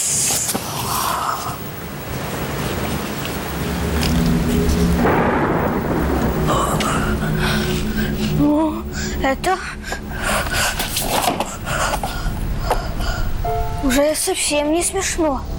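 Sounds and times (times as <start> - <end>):
heavy rain falling outside a club: 0.0 - 13.5
low rumbling thunder: 2.2 - 10.8
speech: 9.2 - 9.8, 14.0 - 15.5.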